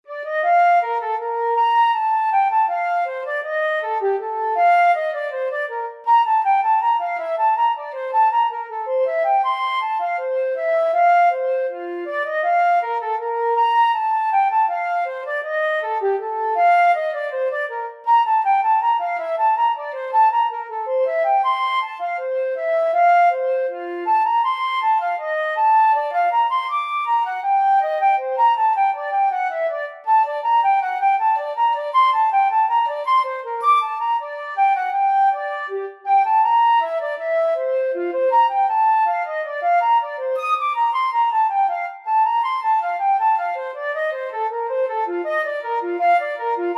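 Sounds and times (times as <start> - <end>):
flute playing a bourree: 0.0 - 46.7.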